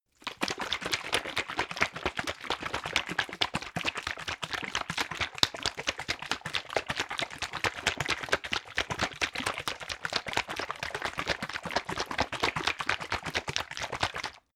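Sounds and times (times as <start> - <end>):
syrup bottle shaking: 0.2 - 14.5.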